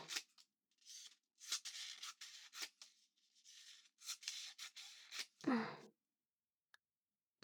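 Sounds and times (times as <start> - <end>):
scissors snipping origami paper into strips: 0.0 - 0.3, 0.9 - 2.9, 3.6 - 5.4.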